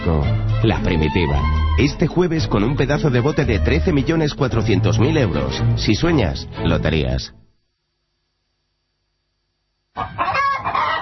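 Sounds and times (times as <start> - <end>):
speech: 0.1 - 7.4
chicken clucking: 10.0 - 11.0.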